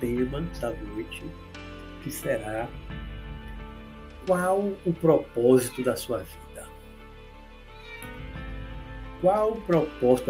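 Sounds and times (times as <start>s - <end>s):
speech: 0.3s - 3.1s, 4.2s - 6.7s, 9.2s - 10.2s
cat meowing at a window: 7.7s - 8.7s.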